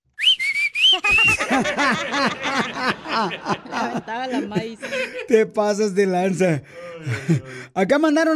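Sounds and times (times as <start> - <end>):
loud human whistling to call someone's attention: 0.0 - 1.4
hearty laughter: 0.9 - 7.7
speech: 0.9 - 8.3.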